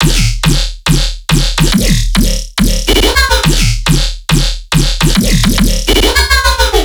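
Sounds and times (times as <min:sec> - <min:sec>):
dubstep riddim bass groove loop at 140 BPM in D sharp: 0:00.0 - 0:06.8.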